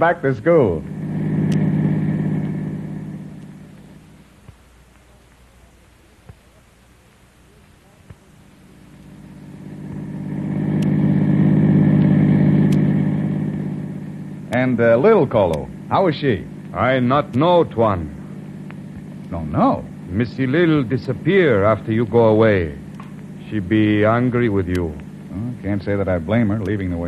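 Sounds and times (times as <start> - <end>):
speech: 0.0 - 0.9, 14.6 - 18.2, 19.3 - 22.8, 23.5 - 27.0
car driving off: 0.5 - 4.1, 9.2 - 26.5.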